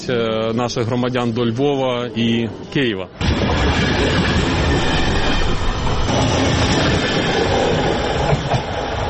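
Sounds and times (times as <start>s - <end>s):
speech: 0.0s - 4.5s
passenger train rolling along rails heading to Przemyśl Poland: 0.0s - 9.0s
train wheel squeal: 3.4s - 9.0s.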